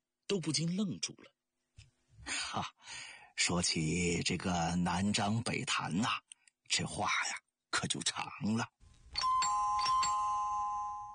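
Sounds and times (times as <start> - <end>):
speech: 0.3 - 1.4, 2.5 - 8.8
doorbell ringing with soft ding-dong chimes: 9.1 - 11.1.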